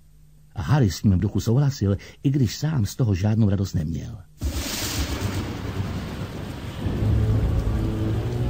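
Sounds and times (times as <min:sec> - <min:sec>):
speech: 0:00.7 - 0:04.4
deep rolling rumble of thunder: 0:04.4 - 0:08.4
steady heavy rain hissing: 0:04.4 - 0:08.4.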